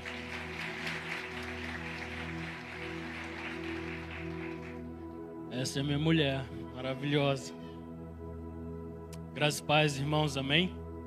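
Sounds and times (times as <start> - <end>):
audience applause: 0.0 - 4.9
sustained keyboard chords: 0.0 - 11.0
speech: 5.6 - 7.6, 9.4 - 10.8.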